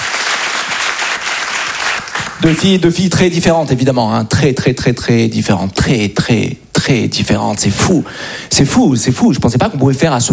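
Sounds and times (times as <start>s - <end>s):
audience applause at a live show: 0.0s - 2.4s
speech: 2.4s - 10.3s.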